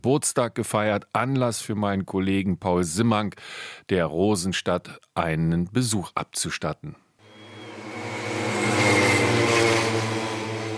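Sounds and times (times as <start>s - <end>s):
speech: 0.0s - 7.0s
pacer motorcycle engines rattling at cycle track: 7.3s - 10.7s.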